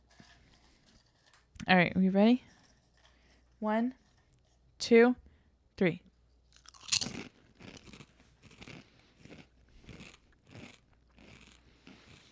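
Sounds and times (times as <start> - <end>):
speech: 1.7 - 2.5, 3.6 - 4.0, 4.8 - 5.2, 5.8 - 6.1
biting and chewing sweet potato chips from a bag: 6.5 - 12.3.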